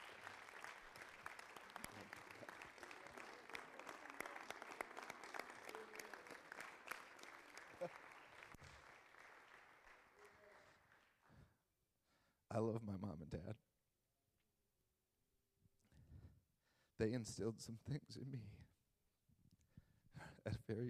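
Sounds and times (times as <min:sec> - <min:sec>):
room full of people applauding: 0:00.0 - 0:11.5
speech: 0:12.5 - 0:13.6, 0:17.0 - 0:18.7, 0:20.4 - 0:20.8.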